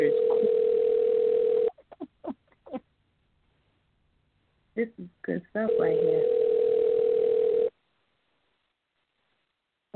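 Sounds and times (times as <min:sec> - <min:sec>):
telephone dial tone as a call is placed: 0:00.0 - 0:01.7, 0:05.7 - 0:07.7
speech: 0:04.8 - 0:06.6.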